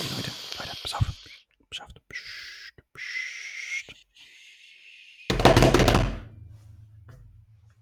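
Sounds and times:
rapid flurry of loud drum hits: 5.3s - 6.6s.

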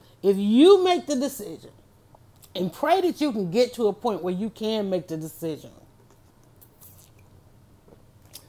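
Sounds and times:
speech: 0.2s - 1.8s, 2.6s - 5.8s
person sipping a drink: 6.5s - 7.3s
soft wet mouth sounds: 6.6s - 7.3s.

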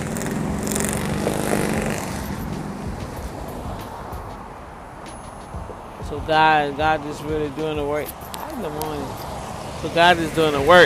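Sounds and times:
motorcycle engine rumbling past: 0.0s - 3.9s
broadband road noise: 0.0s - 10.8s
speech: 6.3s - 10.8s.

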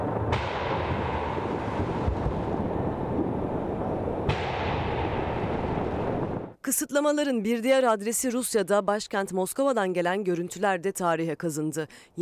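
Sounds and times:
dense rumble of firework explosions: 0.0s - 6.6s
fireworks booming through empty city streets: 0.0s - 6.6s
speech: 6.7s - 12.2s.

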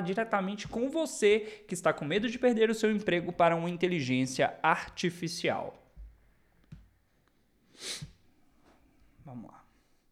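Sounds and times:
speech: 0.0s - 5.8s, 7.8s - 8.1s, 9.3s - 9.6s
person sniffling from a stuffed-up nose caused by the weather: 7.7s - 8.2s.

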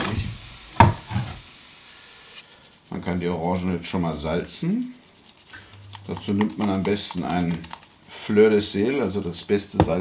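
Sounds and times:
pre-roasted pistachios rattling in an empty pan: 2.5s - 10.0s
speech: 3.0s - 5.0s, 6.1s - 10.0s.

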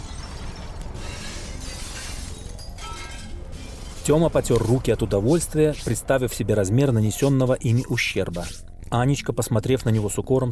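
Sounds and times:
glass shattering and clattering: 0.0s - 6.0s
deep steady rumble: 0.0s - 10.2s
speech: 4.0s - 10.5s.

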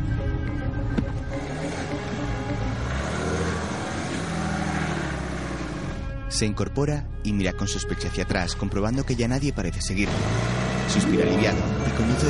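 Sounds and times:
car engine running while reversing off a forest track: 0.7s - 6.1s, 10.0s - 12.2s
speech: 6.4s - 12.2s.

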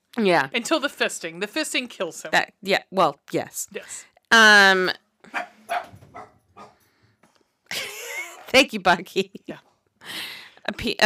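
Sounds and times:
speech: 0.2s - 6.3s, 8.5s - 11.0s
dog barking: 5.3s - 6.8s.

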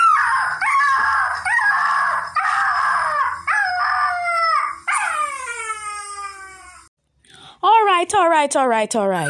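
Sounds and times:
dog whimpering: 0.0s - 6.8s
speech: 8.1s - 9.2s.

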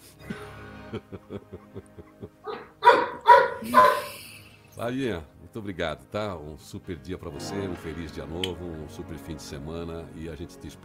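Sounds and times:
laughter: 0.2s - 2.6s
speech: 0.9s - 2.6s, 3.6s - 4.2s, 4.8s - 10.8s
short quick dog yips: 2.5s - 4.2s.

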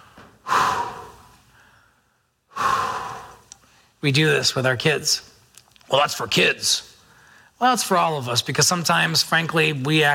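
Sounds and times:
deep forceful breaths from a breathing exercise: 0.0s - 4.0s, 7.0s - 7.6s
speech: 4.0s - 5.3s, 5.9s - 6.9s, 7.6s - 10.1s.

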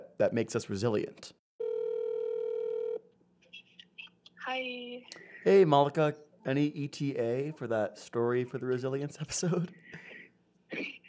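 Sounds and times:
speech: 0.2s - 1.4s, 4.5s - 10.0s
telephone ring tone: 1.6s - 3.1s.

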